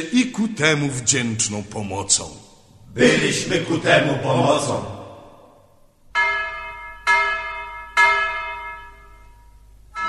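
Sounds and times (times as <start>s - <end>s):
speech: 0.0s - 5.0s
hammer striking a large broken church bell during repair: 6.2s - 10.0s.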